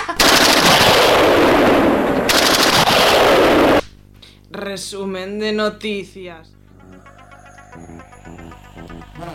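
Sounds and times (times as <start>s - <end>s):
rapid machine-gun fire in a bombardment sound effect: 0.2s - 3.9s
explosions in a bombardment sound effect: 0.6s - 3.8s
speech: 4.8s - 7.2s
short rhythmic voiced pulses: 6.4s - 9.3s.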